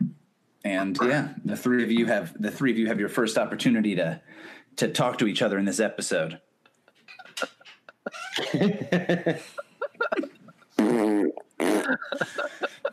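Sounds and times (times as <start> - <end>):
speech: 0.6 - 6.5, 7.4 - 9.7
laughter: 7.2 - 10.6, 11.7 - 12.9
sputtering farts: 10.8 - 12.0.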